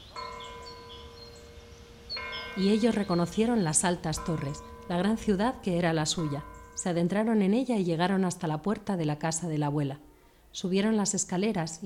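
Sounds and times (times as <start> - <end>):
faint church bell struck once and ringing: 0.0 - 7.6
speech: 2.6 - 11.8.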